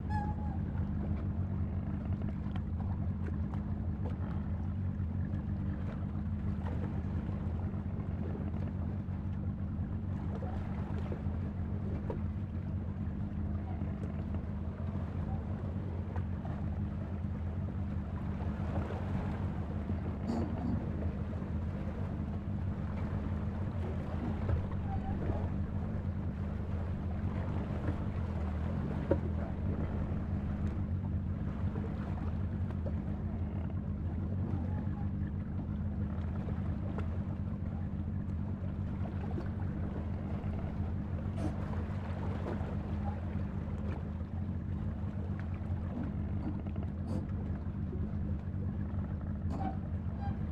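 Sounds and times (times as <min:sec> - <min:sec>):
sea: 0:00.0 - 0:50.4.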